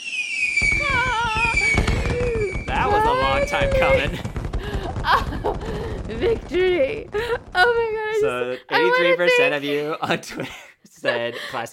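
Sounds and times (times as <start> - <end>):
high steady fireworks whistle: 0.0 - 7.8
speech: 3.5 - 4.3, 5.1 - 11.7.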